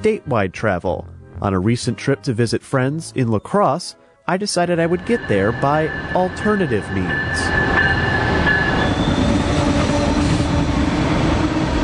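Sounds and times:
speech: 0.0 - 7.8
faint metallic train wheel squeal: 4.8 - 10.7
passenger train rumbling on rails heard from on board: 4.8 - 11.8
rhythmic train wheel clatter: 4.9 - 9.2.

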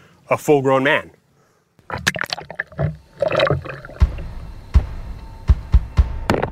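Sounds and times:
speech: 0.3 - 1.2, 1.9 - 2.2
brick-weighted paddle splashing and gurgling in water: 1.8 - 4.4
dull knocking thumps: 2.8 - 6.5.

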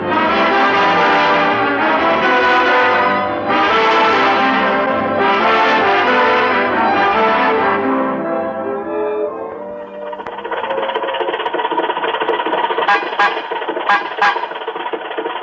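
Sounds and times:
loud old car engine sputtering and rattling: 0.0 - 8.2, 9.4 - 15.4
old-fashioned car horn blaring: 0.1 - 8.3, 12.8 - 14.7.

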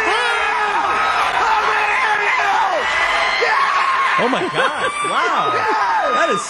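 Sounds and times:
excited crowd screaming, whooping and cheering: 0.0 - 6.4
laughter: 3.4 - 6.4
speech: 4.3 - 6.4.

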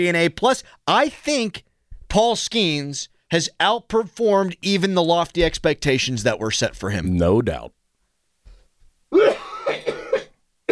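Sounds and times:
speech: 0.0 - 7.8
rough throat clearing: 9.1 - 10.7
wet phlegmy cough: 9.2 - 10.7.

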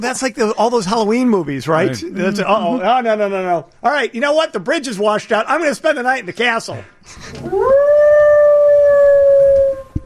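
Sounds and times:
speech: 0.0 - 7.9
coyote howling: 7.5 - 10.0.

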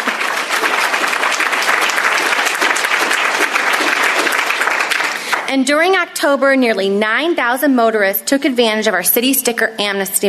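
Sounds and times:
large audience applauding: 0.0 - 5.5
speech: 5.5 - 10.2.

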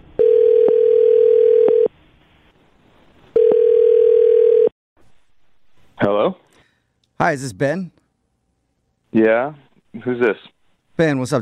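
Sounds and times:
telephone dial tone: 0.2 - 1.9, 3.3 - 4.7
speech: 7.3 - 8.0, 9.1 - 11.4.

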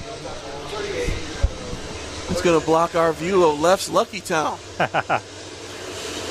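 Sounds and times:
faint voices murmuring: 0.0 - 3.6
train rumbling past on nearby tracks: 0.0 - 6.2
speech: 2.3 - 5.4
laughter: 4.8 - 5.2.

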